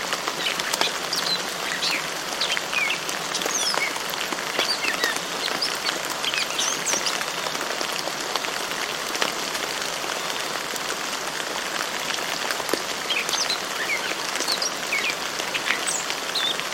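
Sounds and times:
gentle rain pattering: 0:00.0 - 0:16.7
morning birds chirping and calling: 0:00.3 - 0:07.2, 0:13.0 - 0:16.7.

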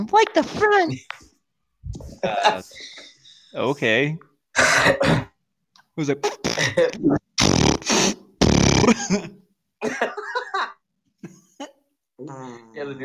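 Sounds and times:
speech: 0:00.0 - 0:01.2, 0:01.9 - 0:05.2, 0:06.0 - 0:08.2, 0:08.9 - 0:10.4, 0:12.2 - 0:13.0
voice imitating a fart with raspy blown bursts: 0:06.3 - 0:09.2.

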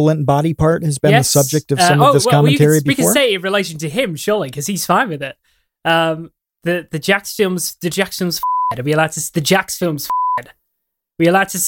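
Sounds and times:
speech: 0:00.0 - 0:10.6, 0:11.2 - 0:11.6
high-pitched censor bleep over a word: 0:10.1 - 0:10.4.

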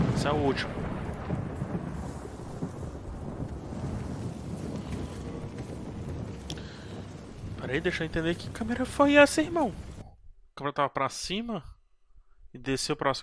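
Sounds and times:
heavy steady rain pouring: 0:00.0 - 0:10.0
deep low rumble: 0:00.0 - 0:10.3
speech: 0:00.2 - 0:01.4, 0:07.7 - 0:09.9, 0:10.6 - 0:11.7, 0:12.5 - 0:13.2.

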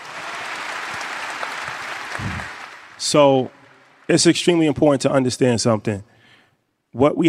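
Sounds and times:
audience applause: 0:00.0 - 0:04.3
speech: 0:03.0 - 0:06.1, 0:06.9 - 0:07.2.

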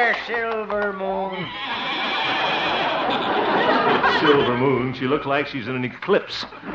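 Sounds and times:
speech: 0:00.0 - 0:01.8, 0:04.2 - 0:06.7
horse whinnying: 0:01.3 - 0:03.3, 0:06.5 - 0:06.7
laughter: 0:01.4 - 0:05.2.

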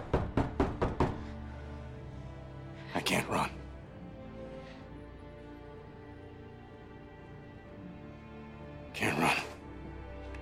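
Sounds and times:
knocking on a door: 0:00.0 - 0:01.3
speech: 0:03.0 - 0:03.6.

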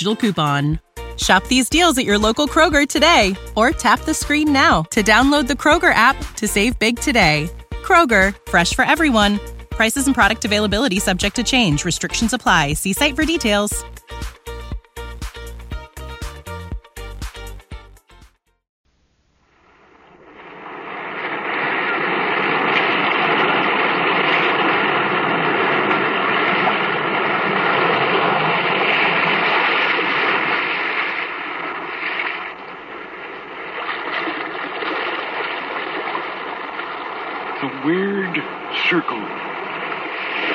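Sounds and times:
speech: 0:00.0 - 0:14.0
music: 0:00.0 - 0:18.6
loud roar of crashing sea waves: 0:20.2 - 0:40.5.

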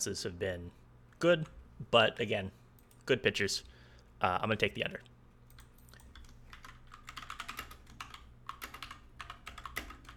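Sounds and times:
speech: 0:00.0 - 0:05.1
fast typing on a computer keyboard: 0:05.5 - 0:10.1.

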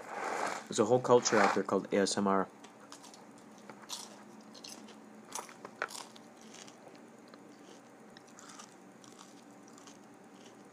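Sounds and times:
low steady hum: 0:00.0 - 0:10.7
speech: 0:00.7 - 0:02.6
crunchy food being bitten and chewed: 0:02.8 - 0:10.7.

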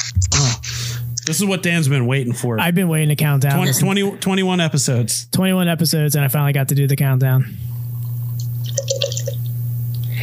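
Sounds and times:
steady low electrical hum: 0:00.0 - 0:10.2
speech: 0:01.3 - 0:07.8
beet beer glugging and splashing into a glass: 0:08.0 - 0:09.5.

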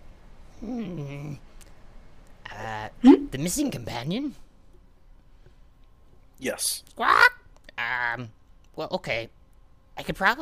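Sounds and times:
speech: 0:00.6 - 0:01.4, 0:03.3 - 0:04.4, 0:06.4 - 0:07.3, 0:07.9 - 0:09.4, 0:10.0 - 0:10.4
human voice imitating a cat meow: 0:06.9 - 0:08.3.

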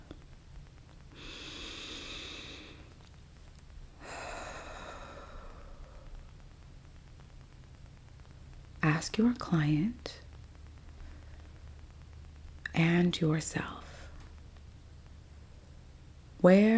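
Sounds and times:
faint breathing in through the nose and out through the mouth during a guided breath exercise: 0:01.1 - 0:03.0, 0:04.0 - 0:06.3
speech: 0:08.9 - 0:10.2, 0:12.8 - 0:13.8, 0:16.4 - 0:16.7.

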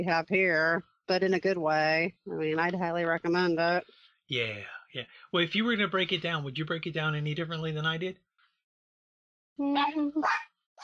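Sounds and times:
speech: 0:00.0 - 0:08.2, 0:09.6 - 0:10.8
dog barking: 0:10.2 - 0:10.8.

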